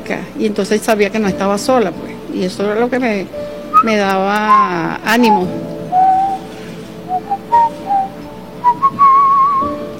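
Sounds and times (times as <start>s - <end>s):
speech: 0.1s - 5.7s
person whistling a short tune: 3.8s - 6.5s, 7.1s - 9.8s.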